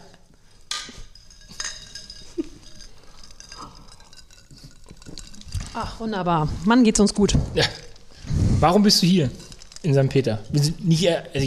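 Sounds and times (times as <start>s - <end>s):
softer clattering and handling noises: 0.0s - 6.1s, 8.9s - 10.6s
glasses clinking in a toast in St. Peter: 0.0s - 6.2s, 8.9s - 11.4s
speech: 5.8s - 7.9s, 8.6s - 11.4s.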